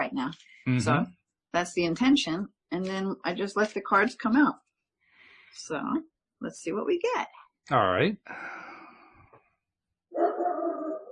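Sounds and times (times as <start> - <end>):
speech: 0.1 - 4.6, 5.5 - 8.7
dogs barking: 10.2 - 11.1.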